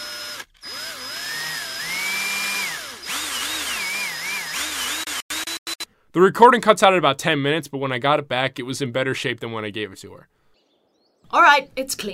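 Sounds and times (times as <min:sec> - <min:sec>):
power tool whining while taking apart a recorder: 0:00.0 - 0:05.9
speech: 0:06.1 - 0:10.4, 0:11.3 - 0:12.1.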